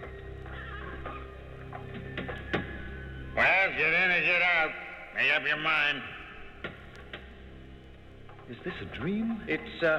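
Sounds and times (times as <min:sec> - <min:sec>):
horse hooves clip-clopping on a road: 0:00.0 - 0:03.2
horse whinnying in a long wavering neigh: 0:00.5 - 0:01.3
speech: 0:03.7 - 0:06.2, 0:08.5 - 0:09.9.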